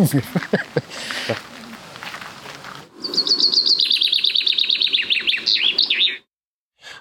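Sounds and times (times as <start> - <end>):
speech: 0.0 - 1.4
laughter: 0.0 - 1.5
common chaffinch singing: 3.0 - 6.3.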